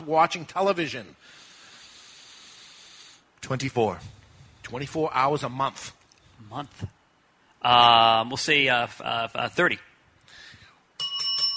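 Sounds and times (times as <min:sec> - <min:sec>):
speech: 0:00.0 - 0:01.4, 0:03.4 - 0:07.0, 0:07.6 - 0:09.9
bell rung as a quiz sound effect: 0:11.0 - 0:11.5.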